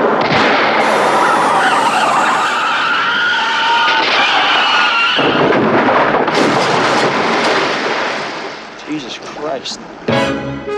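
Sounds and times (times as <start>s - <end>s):
tires screeching as car skids out of control: 0.8s - 5.4s
car smashing through a guardrail: 3.8s - 8.6s
speech: 9.6s - 10.4s.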